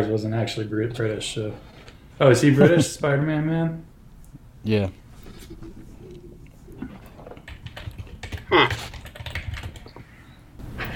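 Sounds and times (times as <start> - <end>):
speech: 0.0 - 3.9, 4.6 - 5.7
typing on a computer keyboard: 7.2 - 10.0.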